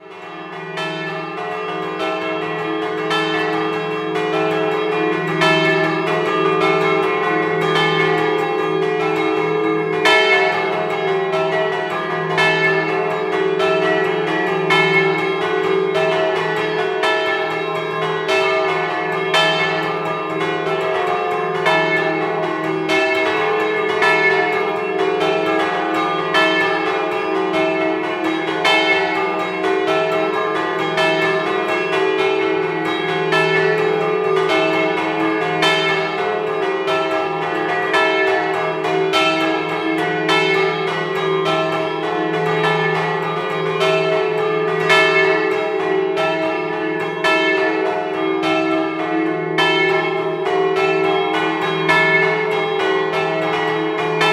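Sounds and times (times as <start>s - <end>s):
bells: 0.0s - 54.3s.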